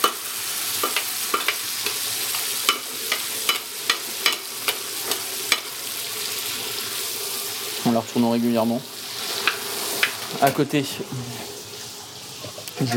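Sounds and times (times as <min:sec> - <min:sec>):
brown butter sizzling in a pan while basting venison fillet: 0:00.0 - 0:12.9
speech: 0:07.9 - 0:09.0, 0:10.4 - 0:11.5.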